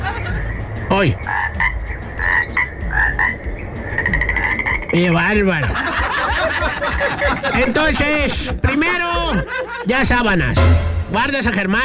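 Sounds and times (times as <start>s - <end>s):
laughter: 0.0s - 0.5s, 5.4s - 10.4s
speech: 0.9s - 1.4s, 4.9s - 5.9s, 7.0s - 11.8s
toad croaking: 1.2s - 5.2s.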